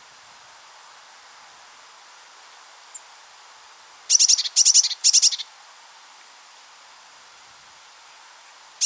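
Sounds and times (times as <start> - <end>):
Eurasian blue tit Cyanistes caeruleus calling: 4.1 - 5.5.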